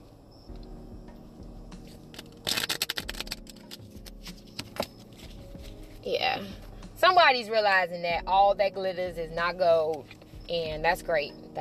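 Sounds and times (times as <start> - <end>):
shuffling a deck of tarot cards: 1.8 - 6.1, 9.9 - 10.4
tarot deck being squared with soft scrapes and taps: 2.2 - 6.0
speech: 6.1 - 11.6.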